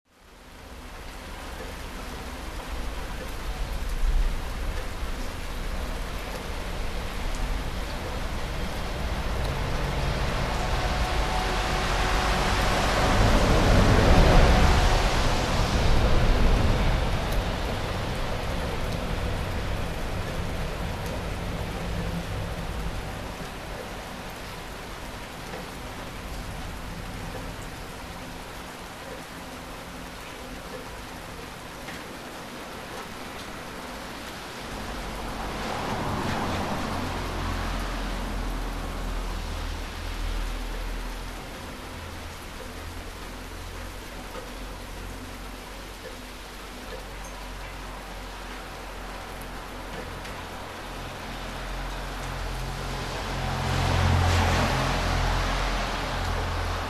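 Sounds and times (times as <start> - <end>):
large suburban town center ambience on a rainy day: 0.1 - 56.8.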